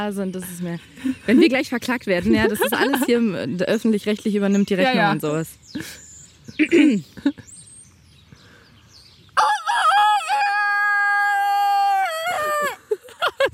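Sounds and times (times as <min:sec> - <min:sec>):
speech: 0:00.0 - 0:06.0, 0:06.6 - 0:07.5
laughter: 0:02.3 - 0:03.3, 0:12.4 - 0:13.5
person imitating a rooster crow on a farmyard: 0:09.4 - 0:12.9.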